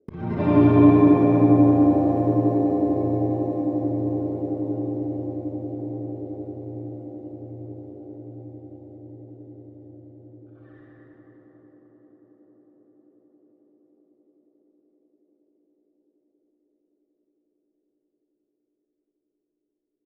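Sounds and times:
wobbling strum: 0.1s - 8.9s.

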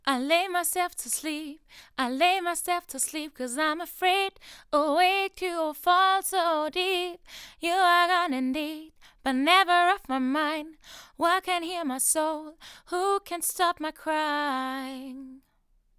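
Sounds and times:
vocals recorded on a Shure PG27 microphone: 0.0s - 15.9s.

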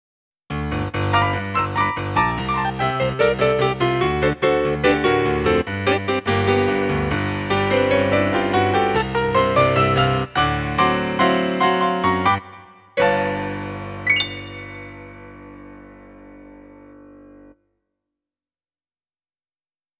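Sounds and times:
dance piano music: 0.8s - 16.4s.

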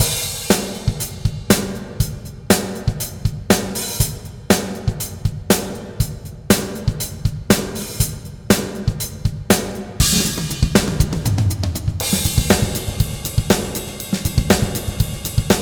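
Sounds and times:
drums with FabFilter Pro-R concert hall reverb: 0.0s - 15.6s.

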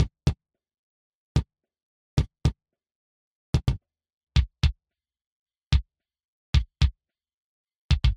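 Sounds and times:
kick drum: 0.0s - 0.4s, 3.6s - 3.8s, 4.4s - 4.8s, 6.6s - 7.0s, 7.9s - 8.1s.

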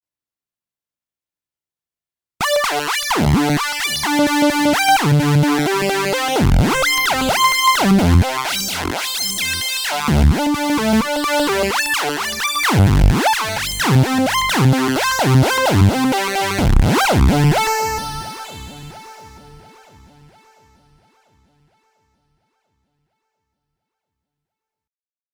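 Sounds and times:
Nord Lead A1 synthesizer arpeggio gliding: 2.4s - 20.4s.

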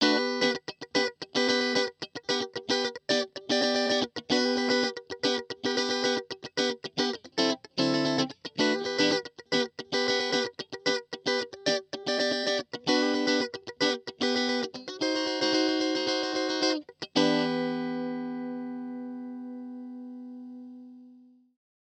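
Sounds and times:
funk guitar with EQ and compression: 0.0s - 20.1s.

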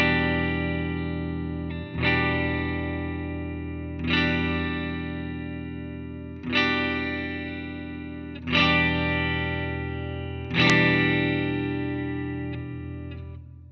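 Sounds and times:
Strat guitar: 0.0s - 13.7s.

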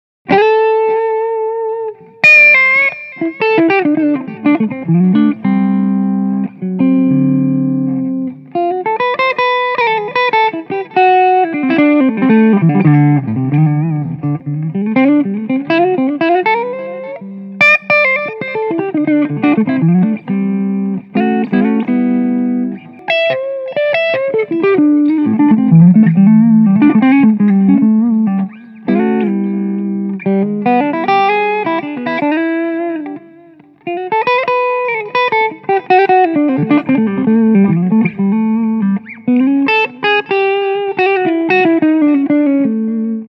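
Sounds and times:
Hagstrom Fantomen guitar on clean neck pickup: 0.3s - 43.3s.

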